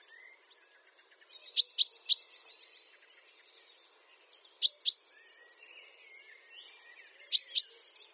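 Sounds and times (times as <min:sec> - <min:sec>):
soft faint chirps: 0:00.0 - 0:08.1
common chaffinch Fringilla coelebs giving short sharp calls: 0:01.5 - 0:02.4, 0:04.6 - 0:05.1, 0:07.3 - 0:07.8.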